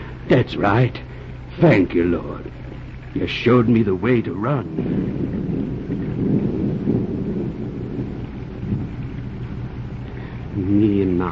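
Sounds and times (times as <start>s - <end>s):
steady heavy downpour: 0.0s - 11.3s
speech: 0.3s - 5.4s, 10.6s - 11.3s
deep rolling rumbles of thunder: 3.2s - 11.3s.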